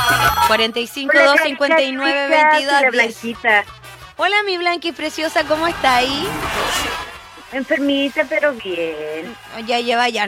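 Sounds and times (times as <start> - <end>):
telephone ringing with a bright electronic ringtone: 0.0 - 1.5
speech: 0.5 - 6.9, 7.5 - 10.2.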